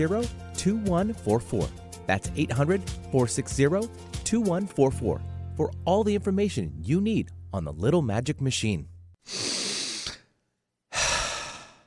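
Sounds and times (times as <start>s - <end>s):
speech: 0.0s - 9.4s
deep breaths: 9.2s - 11.8s.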